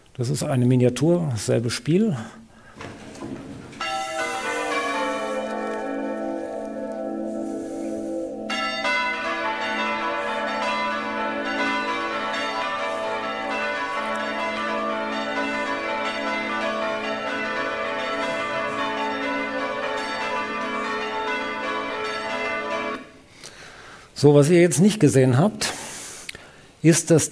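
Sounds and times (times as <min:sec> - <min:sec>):
speech: 0:00.2 - 0:02.4, 0:24.2 - 0:25.7, 0:26.8 - 0:27.2
hand-rung swinging church bells pealing: 0:02.9 - 0:23.2.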